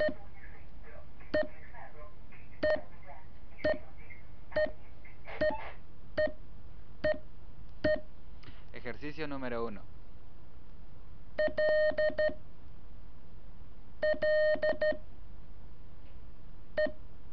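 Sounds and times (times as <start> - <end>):
faint low hum: 0.0 - 17.3
Morse code beeps for the letter E: 2.6 - 2.8, 3.6 - 3.8, 4.6 - 6.4, 7.8 - 8.1, 11.4 - 12.4, 14.0 - 15.0, 16.8 - 17.0
speech: 9.1 - 10.0, 11.4 - 12.4, 14.0 - 15.1, 16.8 - 17.0.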